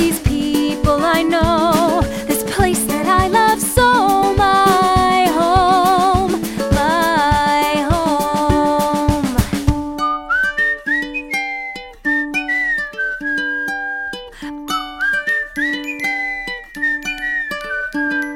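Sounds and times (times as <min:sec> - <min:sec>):
musical accompaniment with plucked and sustained notes: 0:00.0 - 0:18.3
person whistling a bright lilting tune: 0:10.0 - 0:18.3.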